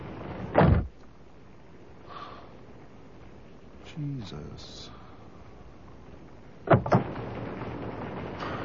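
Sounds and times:
steady low hiss: 0.0 - 8.6
speech: 4.0 - 5.0
door slamming shut: 6.7 - 7.0.

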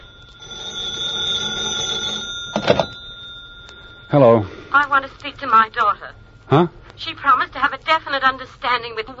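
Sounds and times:
telephone bell ringing: 0.0 - 5.0
speech: 4.1 - 9.1.

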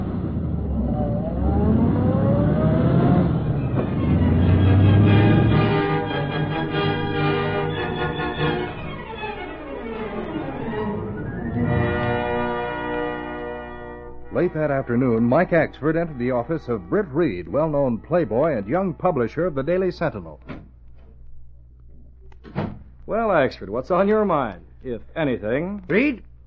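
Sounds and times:
taxi cab engine accelerating around a corner: 0.0 - 12.6
speech: 14.4 - 20.5, 23.1 - 26.3.

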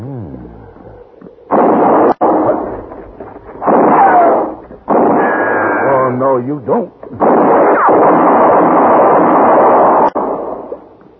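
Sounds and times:
gunshot: 1.5 - 2.9, 3.6 - 6.0, 7.2 - 10.8
speech: 6.5 - 7.2.

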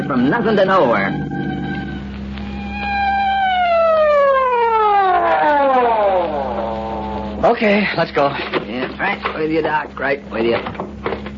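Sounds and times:
speech: 0.0 - 1.5, 7.4 - 10.9
emergency vehicle siren wailing: 0.4 - 7.5.

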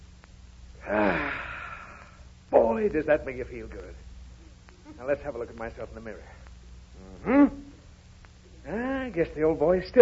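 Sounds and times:
man inhaling deeply during early-morning setting-up exercises: 0.8 - 2.2
speech: 2.8 - 4.1, 4.9 - 6.4, 8.7 - 9.9.

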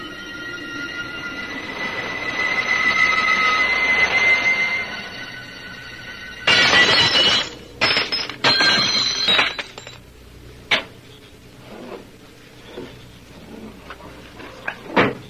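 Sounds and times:
steady metallic hum and squeal: 0.0 - 10.0, 10.9 - 15.2
house window pane smashed during a break-in: 6.5 - 10.0.

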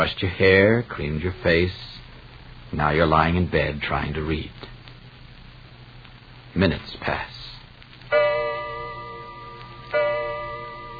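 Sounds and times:
speech: 0.0 - 1.9, 2.7 - 4.6, 6.6 - 7.3
old grandfather clock in a hall striking the hour: 8.1 - 10.9.

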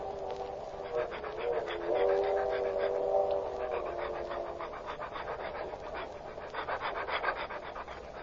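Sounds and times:
dog panting on a leash in a train car aisle: 0.0 - 8.2.

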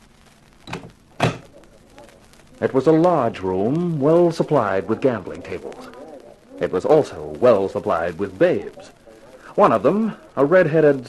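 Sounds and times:
wooden door opening and closing at the entrance to a gambling room: 0.6 - 1.5
speech: 2.6 - 6.0, 6.6 - 9.0, 9.6 - 11.0.

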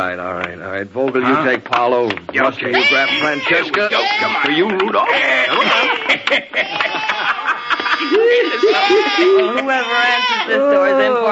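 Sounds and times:
speech: 0.0 - 7.4, 8.0 - 11.3
goat bleating: 2.7 - 4.7, 7.0 - 10.6
laughter: 2.8 - 11.3.

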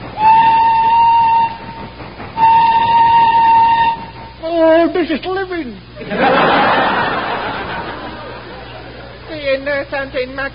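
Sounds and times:
steam train whistle blasts: 0.0 - 4.6
steam train engine rumbling up a mountain: 0.0 - 10.5
speech: 5.1 - 6.3, 9.6 - 10.5
laughter: 6.0 - 9.3.

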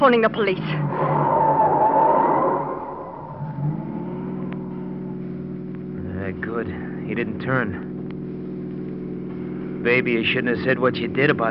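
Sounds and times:
speech: 0.0 - 1.2, 6.6 - 7.9, 9.8 - 11.5
car engine humming on a dark street after midnight: 0.0 - 11.5
car tire squealing turning a corner: 0.6 - 5.6.

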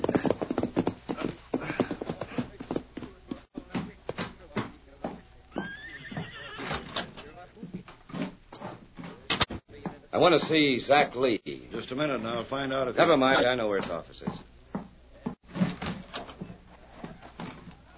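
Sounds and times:
horse hooves clip-clopping to a halt: 0.0 - 10.6, 13.5 - 17.9
horse whinnying and snorting: 5.6 - 7.1
speech: 10.2 - 14.5.

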